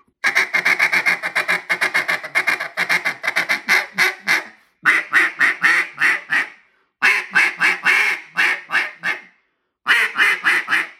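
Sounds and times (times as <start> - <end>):
duck call blown as a loud feed call: 0.2 - 9.3, 9.9 - 10.9.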